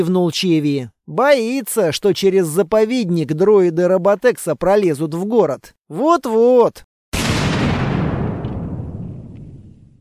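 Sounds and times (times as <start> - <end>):
speech: 0.0 - 6.9
distant explosion: 7.2 - 10.0.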